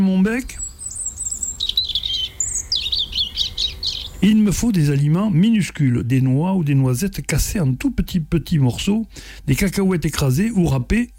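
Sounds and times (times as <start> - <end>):
speech: 0.0 - 0.6, 4.2 - 11.1
European robin singing: 0.0 - 6.3
faint low hum: 0.0 - 11.1.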